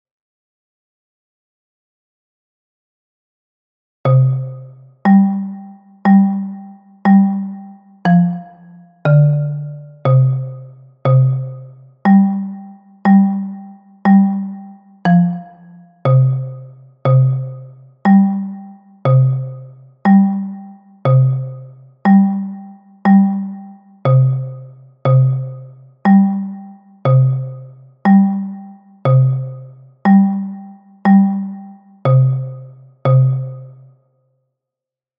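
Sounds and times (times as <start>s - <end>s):
bass xylophone: 4.1s - 33.8s.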